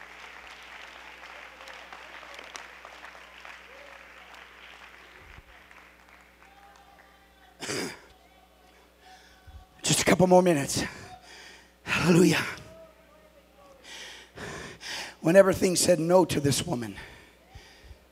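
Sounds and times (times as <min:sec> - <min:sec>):
congregation clapping hands: 0:00.0 - 0:08.8
speech: 0:10.2 - 0:11.0, 0:12.0 - 0:12.6, 0:15.2 - 0:17.2.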